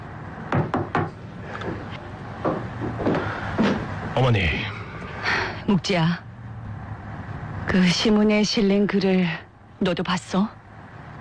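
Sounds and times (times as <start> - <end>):
knocking on a door: 0.5 - 1.2, 2.4 - 3.8
speech: 4.2 - 4.7, 5.7 - 6.2, 7.7 - 10.6.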